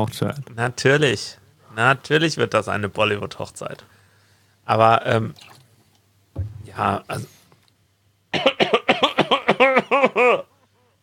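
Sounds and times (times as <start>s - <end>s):
speech: 0.0s - 3.9s, 4.7s - 5.5s, 6.4s - 7.4s, 9.6s - 10.5s
harsh rasping coughing fit: 8.3s - 10.5s.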